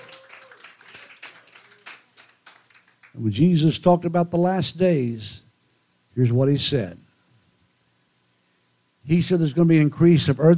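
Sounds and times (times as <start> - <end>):
large audience clapping and applauding: 0.0 - 3.2
speech: 3.2 - 5.4, 6.2 - 7.0, 9.1 - 10.5.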